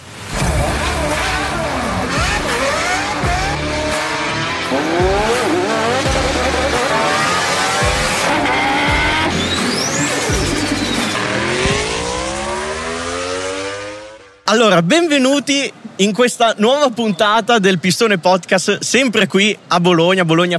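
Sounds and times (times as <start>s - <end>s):
racing car engines revving: 0.1s - 14.4s
racing car tires screeching and skidding: 0.1s - 14.4s
speech: 14.5s - 20.5s.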